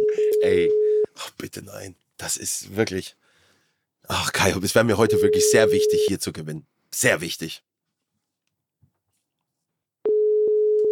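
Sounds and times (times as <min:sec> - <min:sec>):
telephone busy signal: 0:00.0 - 0:01.1, 0:05.1 - 0:06.1, 0:10.1 - 0:10.9
speech: 0:00.4 - 0:00.8, 0:01.4 - 0:03.3, 0:04.0 - 0:07.7.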